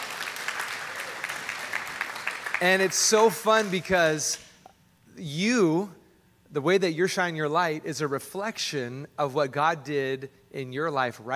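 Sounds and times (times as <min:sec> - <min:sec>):
church congregation applauding at a centennial celebration: 0:00.0 - 0:04.0
speech: 0:02.6 - 0:04.4, 0:05.2 - 0:11.3.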